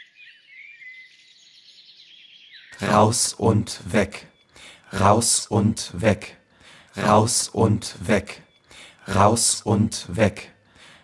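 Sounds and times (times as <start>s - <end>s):
birds chirping and twittering through open windows: 2.5s - 11.0s
speech: 2.7s - 6.4s, 7.0s - 10.6s.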